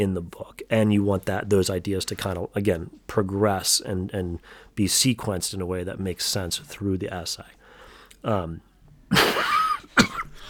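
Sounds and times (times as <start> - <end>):
speech: 0.0 - 7.6, 8.2 - 9.5
person with a dry throat coughing: 9.1 - 10.4.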